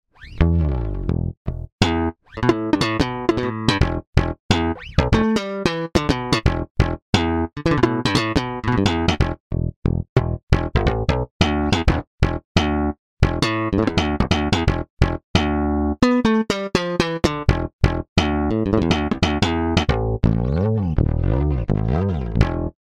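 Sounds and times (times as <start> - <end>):
Precision electric bass: 0.3 - 22.8.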